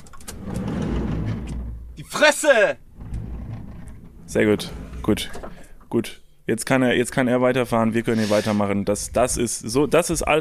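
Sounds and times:
door opening with clicks and rattles: 0.0s - 2.0s, 2.9s - 5.7s
speech: 2.0s - 2.8s, 4.3s - 10.4s.

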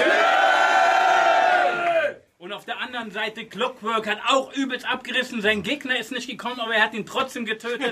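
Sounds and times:
loud crowd cheering and shouting: 0.0s - 2.2s
speech: 2.8s - 7.8s.

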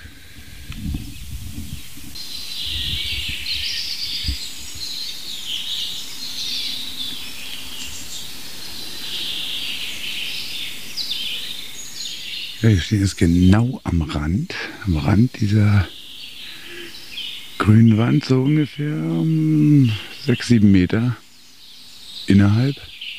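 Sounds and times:
chaffinch song: 0.0s - 23.1s
speech: 12.6s - 16.0s, 17.6s - 21.2s, 22.3s - 22.9s.

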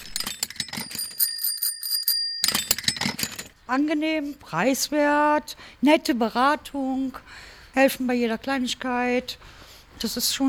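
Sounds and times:
bicycle bells rummaged in a cardboard box at a bicycle shop: 0.0s - 3.6s
speech: 3.7s - 10.4s.

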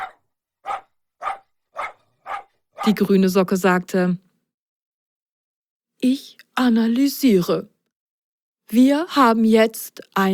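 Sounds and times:
small dachshund barking: 0.0s - 3.1s
speech: 2.9s - 4.2s, 6.0s - 7.7s, 8.7s - 10.3s.

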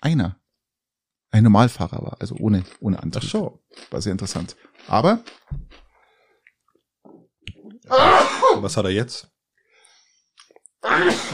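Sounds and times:
speech: 0.0s - 0.4s, 1.3s - 5.8s, 7.9s - 9.3s, 10.8s - 11.3s
man's sneeze into a T-shirt: 7.9s - 8.6s, 10.9s - 11.3s.

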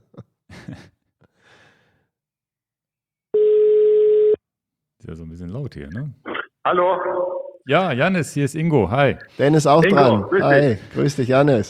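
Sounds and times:
telephone line tone while placing an international call to Spain: 3.4s - 4.4s
speech: 5.1s - 11.6s.

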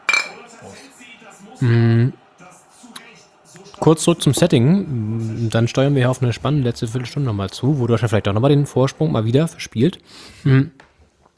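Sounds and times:
drinks clinking together in a toast: 0.0s - 0.7s
speech: 0.6s - 2.2s, 3.8s - 10.8s.

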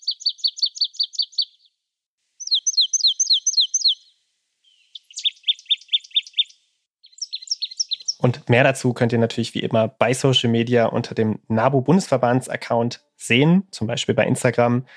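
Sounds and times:
marsh tit singing: 0.0s - 1.8s, 2.4s - 10.5s
speech: 8.2s - 14.9s.

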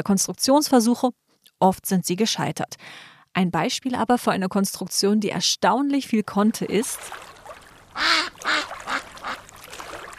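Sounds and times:
speech: 0.0s - 7.3s, 8.0s - 8.6s
duck quacking: 8.0s - 9.5s.

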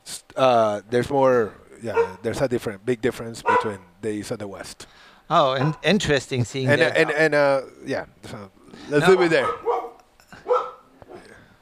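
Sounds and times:
speech: 0.4s - 9.7s
small dog barking: 1.9s - 2.2s, 3.4s - 3.8s, 9.0s - 11.3s.

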